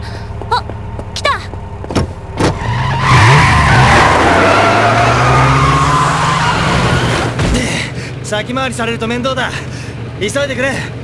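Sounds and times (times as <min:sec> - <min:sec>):
car tyres screeching as a car skids under rough driving: 0:00.6 - 0:08.2
speech: 0:08.3 - 0:11.0.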